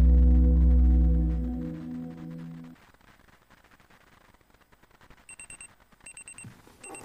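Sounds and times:
deep humming tone: 0.0s - 2.7s
alarm clock ringing with short high electronic beeps: 5.3s - 7.0s.

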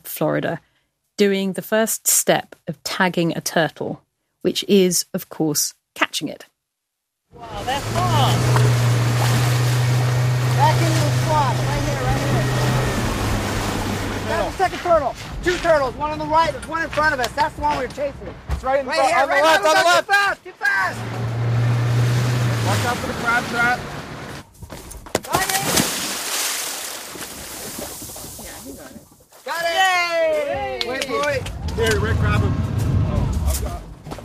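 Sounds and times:
speech: 0.2s - 6.5s, 7.3s - 8.7s, 14.5s - 21.4s, 22.7s - 24.0s, 29.5s - 32.6s
boat motor hum: 7.4s - 14.5s
person jumping from a boat into water: 8.3s - 11.3s, 25.2s - 28.7s
excited voices talking: 14.2s - 21.1s, 29.5s - 33.8s.

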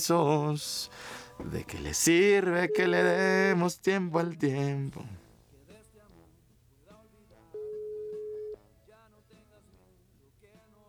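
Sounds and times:
speech: 0.0s - 5.2s
music: 0.6s - 2.0s, 5.2s - 10.8s
telephone call ringing tone: 2.6s - 3.3s, 7.6s - 8.6s.

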